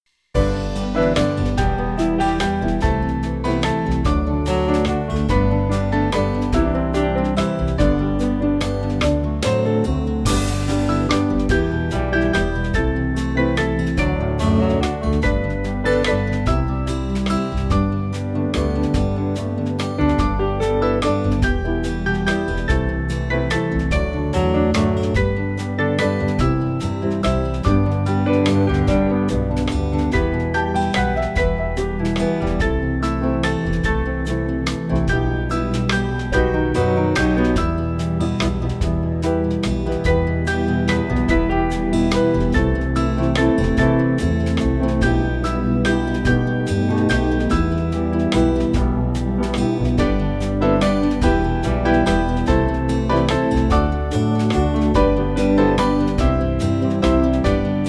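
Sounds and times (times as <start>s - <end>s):
small band playing: 0.4s - 57.8s.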